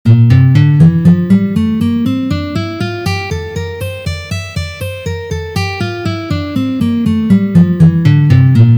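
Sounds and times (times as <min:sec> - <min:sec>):
F major scale in three notes, sixth position: 0:00.1 - 0:08.7.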